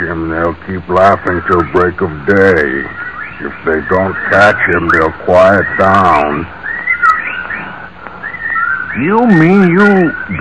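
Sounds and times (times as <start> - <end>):
speech: 0.1 - 6.6, 9.0 - 10.3
sharper bird chirps: 1.2 - 10.3
clear whistling bird calls: 2.4 - 10.3.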